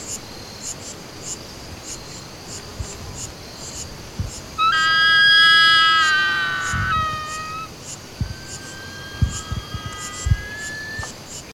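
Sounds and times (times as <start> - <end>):
insect ticking: 0.1 - 11.5
Chaco eagle whistled call: 4.6 - 11.2.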